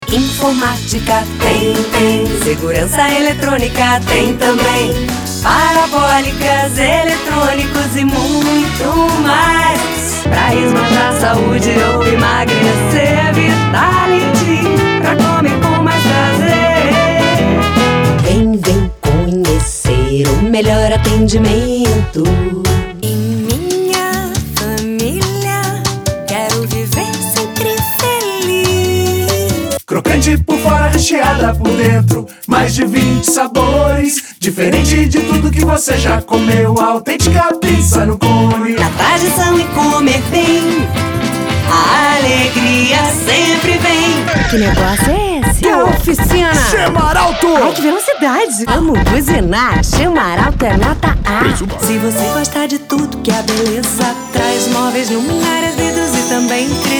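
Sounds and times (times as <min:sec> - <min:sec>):
lead vocal singing in Brazilian Portuguese: 0:00.0 - 0:49.4, 0:50.1 - 0:56.9
backing choir vocals: 0:00.1 - 0:45.0, 0:51.6 - 0:56.9.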